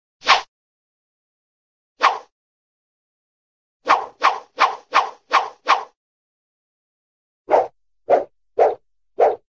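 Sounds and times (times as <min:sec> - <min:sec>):
cartoon single rope swish: 0:00.2 - 0:00.5, 0:02.0 - 0:02.3, 0:03.8 - 0:06.0, 0:07.5 - 0:09.4.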